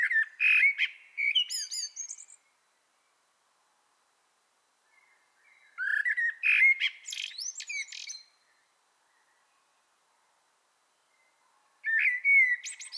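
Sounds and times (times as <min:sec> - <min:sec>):
Common blackbird Turdus merula singing rich whistled phrases: 0:00.0 - 0:02.4, 0:05.0 - 0:08.4, 0:11.8 - 0:12.9.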